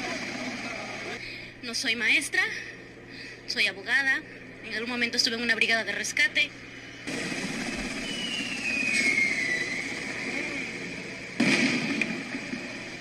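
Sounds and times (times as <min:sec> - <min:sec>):
speech: 0:01.6 - 0:02.7, 0:03.5 - 0:07.4
high whine sliding downward in pitch: 0:06.9 - 0:13.0
low-flying helicopter engine and rotor drone overhead: 0:07.1 - 0:11.4.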